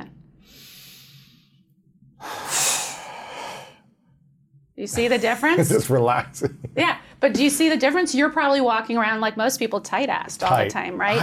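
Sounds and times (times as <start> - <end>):
hard forceful exhale during a breathing exercise: 0.4 - 1.6, 2.2 - 3.8
soft breath: 0.4 - 3.9
speech: 4.8 - 11.2.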